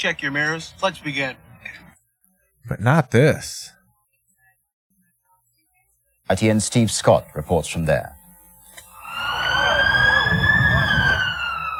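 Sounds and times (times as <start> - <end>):
speech: 0.0 - 1.8, 2.6 - 3.8, 6.3 - 8.2
emergency vehicle siren: 8.9 - 11.7.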